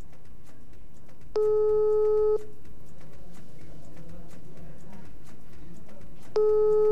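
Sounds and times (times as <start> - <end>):
telephone ringing tones on an outgoing call: 1.4 - 2.4, 6.4 - 6.9.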